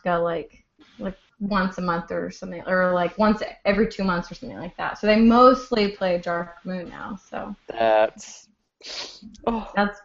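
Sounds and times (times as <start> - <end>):
speech: 0.0 - 10.0
single sharp sneeze: 8.9 - 9.2.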